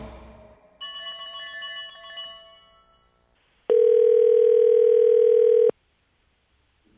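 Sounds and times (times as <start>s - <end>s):
telephone electronic trilling ring: 0.8s - 5.7s
loud steady telephone dial tone: 3.7s - 5.7s.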